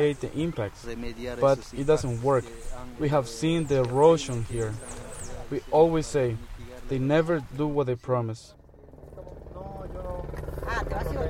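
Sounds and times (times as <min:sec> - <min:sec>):
speech: 0:00.0 - 0:08.6, 0:10.7 - 0:11.2
helicopter landing on a village soccer field: 0:08.6 - 0:11.2.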